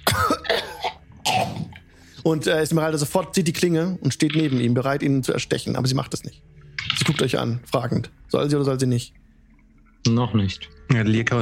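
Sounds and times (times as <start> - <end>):
voice acting hoarse werewolf coughs: 0.0 - 1.8
speech: 2.2 - 6.6, 7.2 - 9.2, 10.0 - 11.3.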